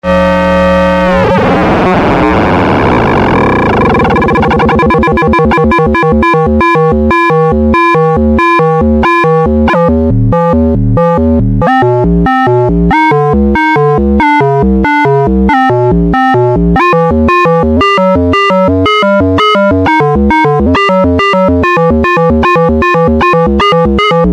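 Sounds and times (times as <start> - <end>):
modular synthesizer FM tone with LFO modulation: 0.0 - 24.3.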